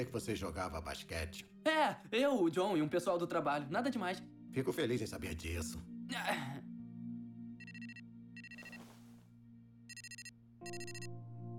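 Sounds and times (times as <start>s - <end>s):
speech: 0.0s - 6.6s
bright electronic phone ringtone trilling: 7.6s - 8.9s, 9.9s - 11.1s.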